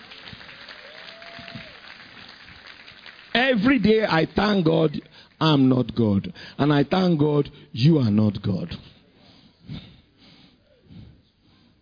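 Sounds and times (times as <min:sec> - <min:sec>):
church audience clapping: 0:00.0 - 0:05.7
speech: 0:03.5 - 0:09.0.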